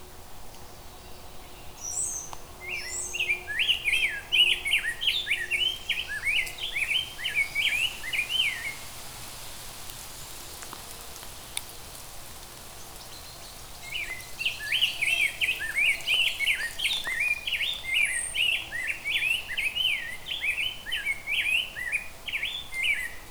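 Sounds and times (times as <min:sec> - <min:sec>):
rose-breasted grosbeak singing: 0:01.0 - 0:08.8, 0:12.9 - 0:23.2.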